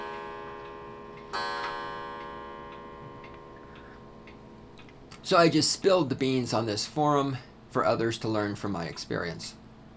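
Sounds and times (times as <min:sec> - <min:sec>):
clock ticking: 0:00.0 - 0:05.5
speech: 0:05.3 - 0:09.6.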